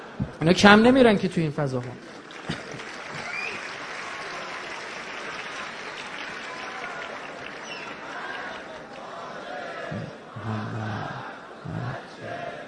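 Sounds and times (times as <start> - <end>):
speech: 0.4 - 2.1
large audience applauding: 1.8 - 9.9
many voices chanting salawat: 7.6 - 12.6.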